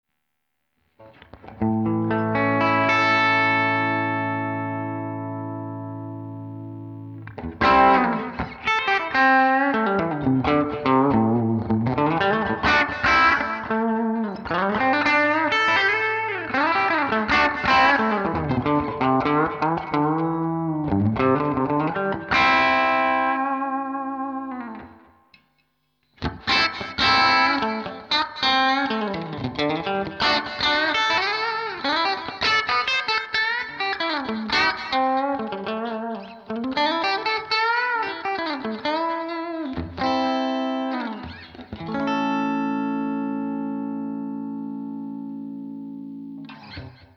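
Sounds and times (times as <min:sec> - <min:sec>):
Gibson electric guitar with bridge position pickups in clean tone: 0:01.0 - 0:25.4, 0:26.2 - 0:47.1.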